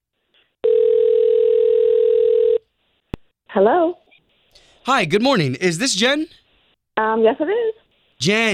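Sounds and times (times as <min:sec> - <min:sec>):
steady buzzing telephone ring tone: 0:00.7 - 0:02.6
speech: 0:03.6 - 0:04.0, 0:04.9 - 0:06.4, 0:07.0 - 0:08.5.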